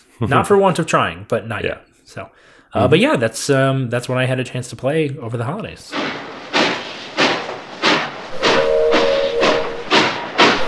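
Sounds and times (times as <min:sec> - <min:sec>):
speech: 0:00.2 - 0:06.3
steam locomotive chuffing: 0:05.9 - 0:10.6
steam locomotive whistle: 0:08.3 - 0:10.6.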